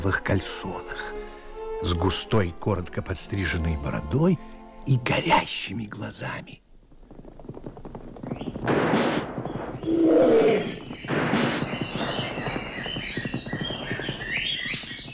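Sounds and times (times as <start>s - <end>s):
speech: 0.0s - 6.6s
whistling of flying bullets: 8.3s - 15.1s
loud sharp bursts: 8.6s - 15.0s
high chirping: 9.4s - 15.1s
lion giving a short deep roar: 9.8s - 10.8s.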